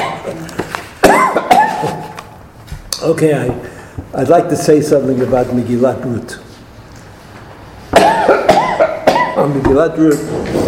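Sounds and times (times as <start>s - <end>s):
hoarse coughs: 1.0s - 2.1s, 7.9s - 9.6s
speech: 3.0s - 6.4s, 9.4s - 10.6s.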